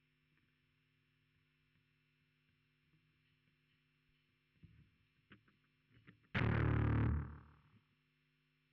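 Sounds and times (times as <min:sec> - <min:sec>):
bass guitar through amp simulator: 0:06.4 - 0:07.6.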